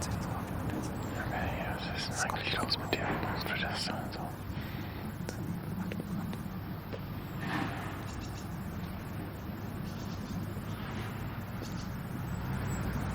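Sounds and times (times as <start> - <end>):
car engine rumble, idling or moving slowly: 0.0 - 13.1
faint airy noise: 0.0 - 13.1.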